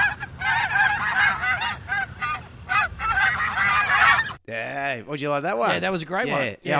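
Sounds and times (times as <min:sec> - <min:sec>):
geese honking: 0:00.0 - 0:04.4
speech: 0:04.5 - 0:06.7.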